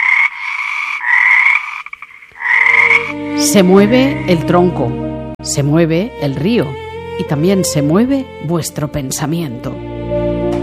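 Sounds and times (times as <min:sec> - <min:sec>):
frog croaking: 0:00.0 - 0:04.4
speech: 0:03.1 - 0:10.0.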